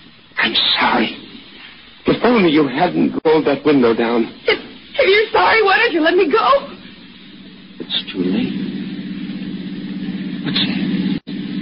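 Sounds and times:
speech: 0.5 - 1.1, 2.2 - 6.8, 7.9 - 8.7, 10.4 - 11.2
car engine droning approaching over a hill: 7.8 - 11.6.

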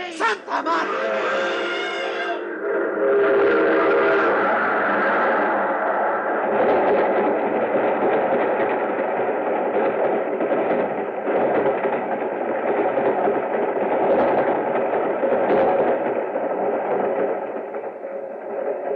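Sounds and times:
train roaring past: 0.0 - 18.2
speech: 0.2 - 1.6
train whistle: 0.7 - 2.6.

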